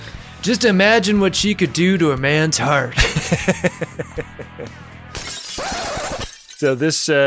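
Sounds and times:
speech: 0.4 - 4.9, 6.6 - 7.2
laughter: 2.9 - 4.8
bar window glass shattering: 5.1 - 7.2.

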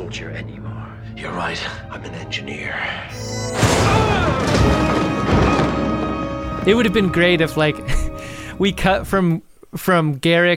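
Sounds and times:
speech: 0.1 - 5.5, 6.6 - 8.0, 8.6 - 10.5
improvised explosive detonating: 3.2 - 6.6
crashing crackling debris: 3.2 - 7.5.

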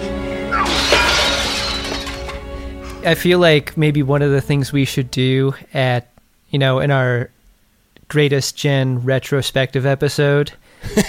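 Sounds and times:
glass table shattered by a judo chop: 0.6 - 2.5
tinkling scattering glass shards: 0.7 - 2.4
speech: 3.0 - 7.4, 8.1 - 11.0.

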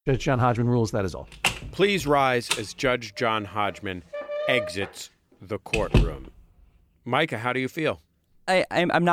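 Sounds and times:
speech: 0.2 - 6.4, 7.0 - 9.1
gavel banging: 1.3 - 5.0, 5.7 - 6.6.

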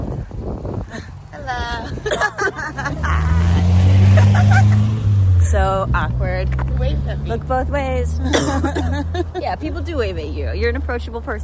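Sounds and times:
vehicle engine humming while passing on a street: 0.0 - 11.4
people laughing: 1.7 - 5.0, 8.2 - 9.8
speech: 5.5 - 11.4.

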